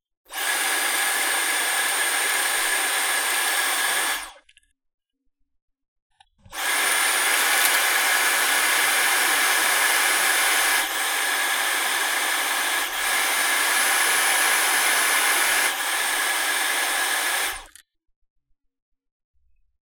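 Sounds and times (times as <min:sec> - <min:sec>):
handheld vacuum cleaner: 0:00.3 - 0:04.4, 0:06.4 - 0:17.8.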